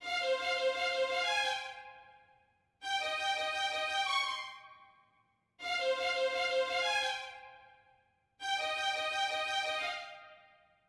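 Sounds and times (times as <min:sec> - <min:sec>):
violins: 0:00.0 - 0:01.9, 0:02.8 - 0:04.6, 0:05.6 - 0:07.4, 0:08.4 - 0:10.4.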